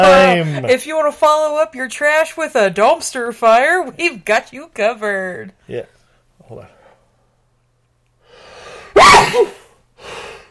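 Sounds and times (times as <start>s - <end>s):
speech: 0.0s - 6.8s, 9.0s - 10.2s
sharp explosive sneeze with cartoonish tonal whoop: 8.9s - 9.8s.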